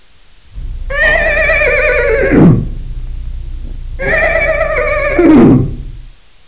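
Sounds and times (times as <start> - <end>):
donkey braying: 0.9 - 2.8, 4.0 - 5.9.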